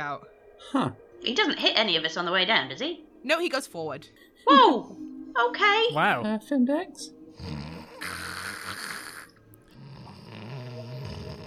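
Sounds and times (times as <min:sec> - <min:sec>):
speech: 0:00.0 - 0:08.2
person imitating gentle snoring: 0:07.4 - 0:11.4.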